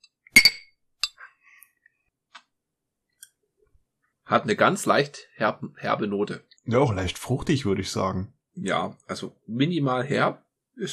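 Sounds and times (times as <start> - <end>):
glasses clinking together in a toast: 0.4 - 1.2
speech: 4.3 - 10.9.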